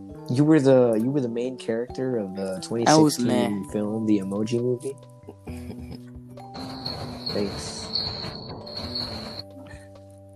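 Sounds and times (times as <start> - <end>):
speech: 0.3 - 5.8, 7.3 - 7.8
high-pitched cricket chirping: 6.5 - 9.5.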